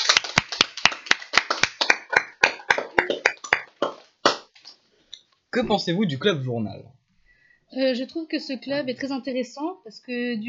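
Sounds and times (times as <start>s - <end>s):
small group applauding: 0.0s - 4.6s
speech: 5.6s - 7.0s, 7.7s - 10.4s.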